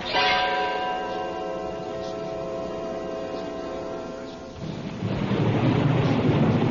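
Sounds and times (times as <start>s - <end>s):
ringing bell-like tone: 0.0s - 4.8s
thunder rumbling: 4.5s - 6.6s.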